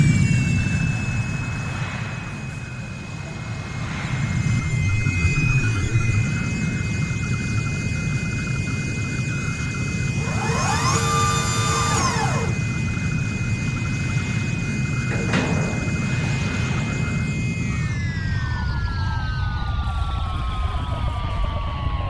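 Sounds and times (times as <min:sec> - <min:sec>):
wavering tones: 0:00.0 - 0:21.2
space shuttle landing on a flight deck with jet-like engine roar: 0:00.0 - 0:22.0
sustained high whine of space shuttle landing: 0:00.0 - 0:22.0.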